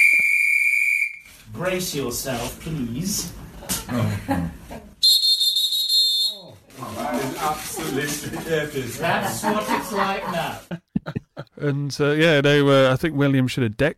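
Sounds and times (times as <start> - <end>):
ship's steam whistle blast: 0.0 - 1.4, 5.0 - 6.5
speech: 1.5 - 4.9, 6.9 - 10.8, 11.6 - 13.9
laughter: 3.6 - 5.0, 6.8 - 11.8.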